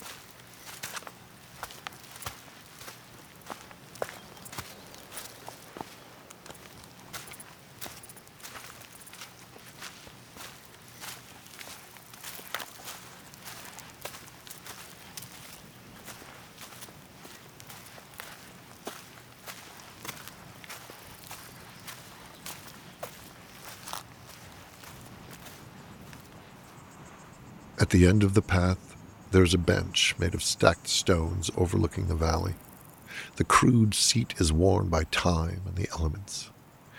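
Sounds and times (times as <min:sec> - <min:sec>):
footsteps on a canyon trail: 0:00.0 - 0:27.0, 0:36.5 - 0:36.9
speech: 0:27.9 - 0:36.6.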